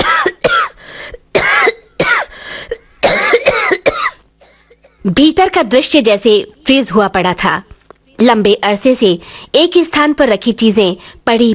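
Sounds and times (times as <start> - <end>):
man coughing harshly after inhaling dust: 0.0 - 4.9
speech: 5.1 - 11.5.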